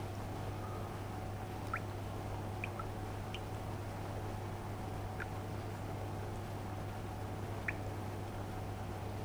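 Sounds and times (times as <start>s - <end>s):
ambient water: 0.0s - 9.2s.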